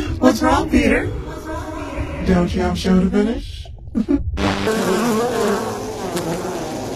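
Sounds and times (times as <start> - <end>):
speech: 0.3 - 1.2, 2.3 - 5.0
many bees swarming and buzzing: 4.4 - 6.9.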